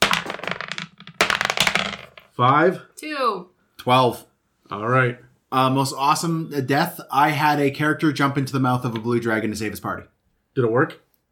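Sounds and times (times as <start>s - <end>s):
dice rolling on a table: 0.0s - 2.6s
speech: 2.4s - 11.0s.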